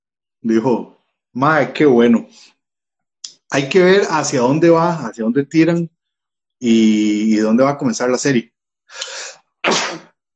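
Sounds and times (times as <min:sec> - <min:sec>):
speech: 0:00.4 - 0:02.6, 0:03.5 - 0:06.0, 0:06.6 - 0:09.8
sneeze: 0:09.6 - 0:10.2.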